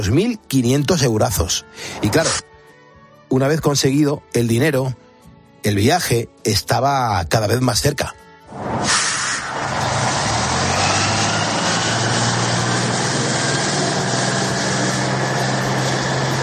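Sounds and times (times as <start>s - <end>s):
speech: 0.0s - 2.5s, 3.3s - 5.0s, 5.6s - 9.2s
road noise: 1.7s - 2.5s, 8.4s - 16.4s
bus engine rumbling: 8.6s - 16.4s
air brake hiss: 8.8s - 9.6s.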